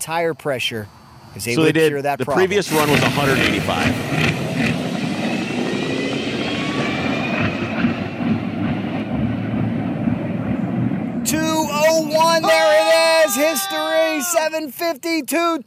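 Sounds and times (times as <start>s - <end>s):
speech: 0.0s - 4.6s, 13.3s - 15.6s
rising electric whine of an electric dragster: 2.3s - 14.0s
electric dragster roaring past on a drag run: 2.4s - 13.2s.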